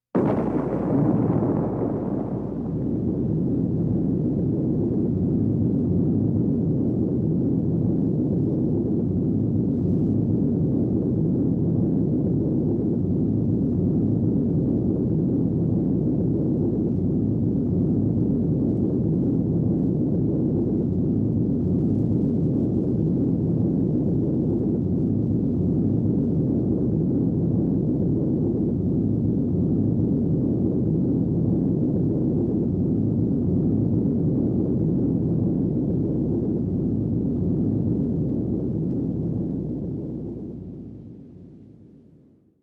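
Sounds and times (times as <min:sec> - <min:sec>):
nuclear explosion: 0:00.1 - 0:41.5.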